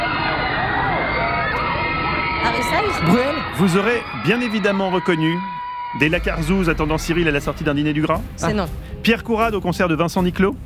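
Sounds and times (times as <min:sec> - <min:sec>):
crowd of fans screaming at an autograph signing session: 0:00.0 - 0:07.9
speech: 0:02.4 - 0:10.6.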